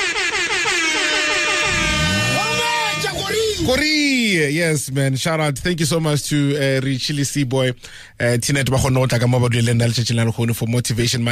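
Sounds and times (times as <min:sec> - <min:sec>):
air horn sound effect blasts: 0:00.0 - 0:03.6
speech: 0:03.7 - 0:11.3.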